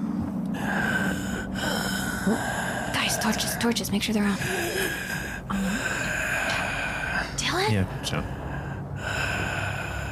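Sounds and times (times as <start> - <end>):
heavy raspy breathing: 0.0 - 7.4, 8.0 - 10.0
speech: 2.3 - 2.6, 3.2 - 4.9, 7.7 - 8.4.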